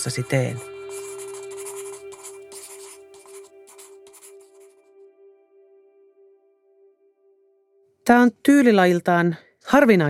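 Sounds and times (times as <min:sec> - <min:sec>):
speech: 0:00.0 - 0:00.7, 0:08.1 - 0:10.0
pen scribbling hurriedly in a notebook: 0:00.0 - 0:04.8.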